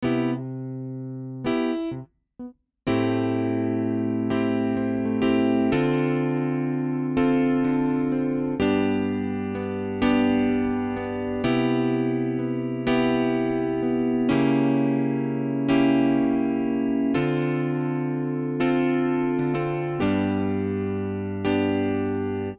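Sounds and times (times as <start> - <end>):
CP70 electric grand piano: 0.0 - 2.0, 2.9 - 22.5.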